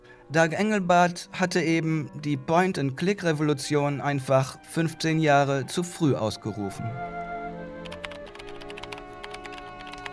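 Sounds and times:
speech: 0.3s - 7.4s
computer keyboard typing: 7.8s - 10.1s.

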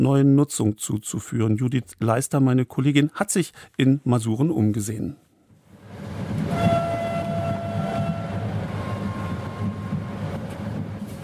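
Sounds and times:
speech: 0.0s - 5.3s
train rumbling along the rails: 5.7s - 11.2s
thin high squealing or whistling tones: 6.5s - 10.4s.

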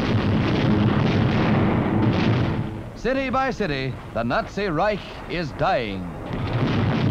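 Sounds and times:
roar of explosions and fires during a wartime city bombing: 0.0s - 3.1s, 5.2s - 7.0s
speech: 3.0s - 6.5s.

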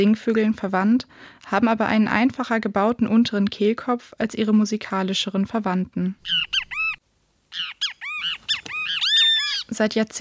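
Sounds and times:
speech: 0.0s - 6.6s, 9.8s - 10.1s
social flycatcher singing: 6.2s - 9.7s.

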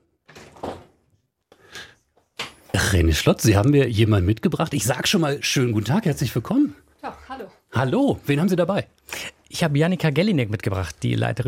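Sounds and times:
door opening in a newsroom: 0.0s - 1.1s
speech: 2.9s - 6.8s, 7.8s - 11.4s.

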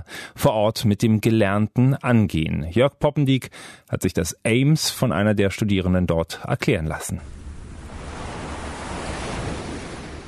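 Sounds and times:
speech: 0.2s - 7.4s
wind: 7.0s - 10.2s
sea waves washing continuously: 7.2s - 10.2s.

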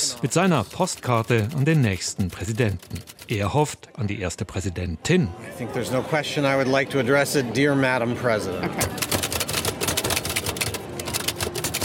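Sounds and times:
old mechanical typewriter clacking: 0.0s - 3.6s, 8.8s - 11.8s
speech: 0.2s - 9.1s.

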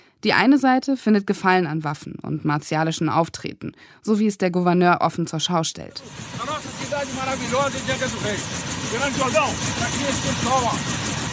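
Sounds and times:
speech: 0.2s - 11.3s
helicopter rotor and engine roar over a favela: 5.8s - 11.3s.

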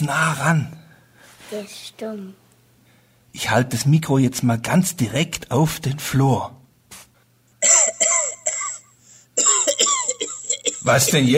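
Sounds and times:
speech: 0.0s - 0.8s, 1.5s - 2.4s, 3.4s - 6.6s, 10.9s - 11.3s
loud harsh coughing: 7.6s - 11.3s.

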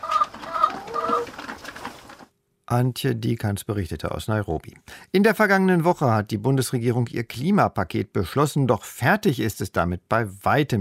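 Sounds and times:
chickens clucking on an organic farm: 0.0s - 2.2s
speech: 2.7s - 10.7s.

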